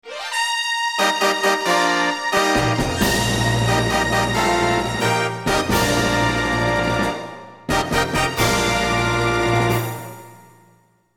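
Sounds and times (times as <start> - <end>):
stage entrance fanfare: 0.0 - 10.6.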